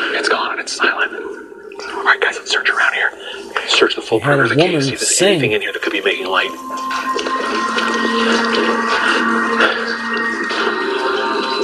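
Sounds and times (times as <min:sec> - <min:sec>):
speech: 0:00.2 - 0:07.2, 0:08.1 - 0:09.8
water dripping and trickling in a cave: 0:01.2 - 0:02.6, 0:05.9 - 0:11.6.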